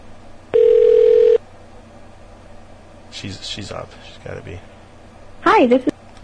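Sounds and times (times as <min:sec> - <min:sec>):
outgoing phone call ringing tone: 0:00.5 - 0:01.4
speech: 0:03.2 - 0:04.8, 0:05.5 - 0:05.9.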